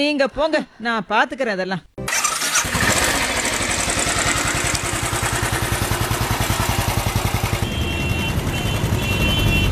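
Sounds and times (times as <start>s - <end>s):
speech: 0.0s - 1.9s
jeep engine chugging and idling: 2.0s - 9.7s.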